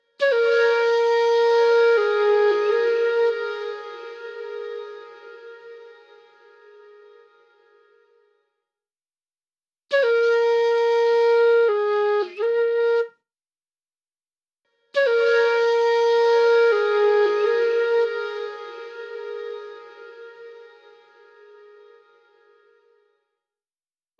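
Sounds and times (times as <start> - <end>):
flute playing: 0.2 - 7.9, 9.9 - 13.1, 15.0 - 22.7.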